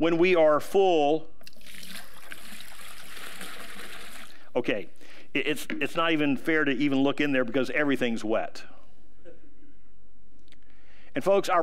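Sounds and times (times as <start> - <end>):
speech: 0.0 - 1.9, 4.5 - 8.7, 11.2 - 11.6
water pouring into a cup: 1.4 - 4.4.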